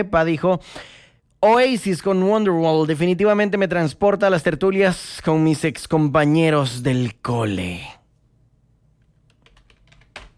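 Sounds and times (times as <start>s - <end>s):
speech: 0.0s - 8.0s
typing on a computer keyboard: 9.2s - 10.3s.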